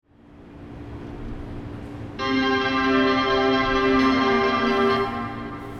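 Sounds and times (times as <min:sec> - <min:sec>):
melody: 0:02.2 - 0:05.7.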